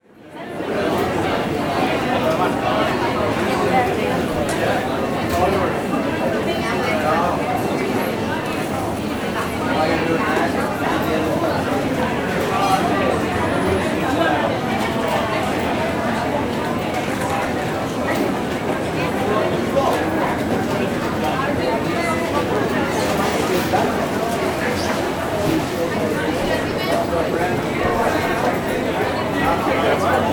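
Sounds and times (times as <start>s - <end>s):
busy fast food coffee shop restaurant ambience: 0.0s - 30.3s.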